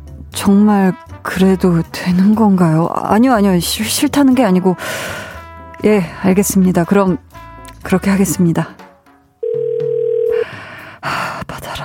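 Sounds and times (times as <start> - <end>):
speech: 0.4 - 8.8
steady electronic telephone ringback tone: 9.4 - 10.5.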